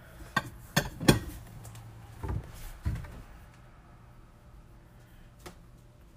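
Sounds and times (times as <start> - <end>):
bowls and dishes clattering in a cupboard: 0.3 - 1.4.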